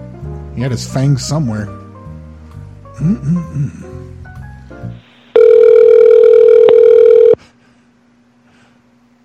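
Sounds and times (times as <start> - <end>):
speech: 0.6 - 1.8, 3.0 - 4.0
phone line ringing through the receiver: 5.4 - 7.4.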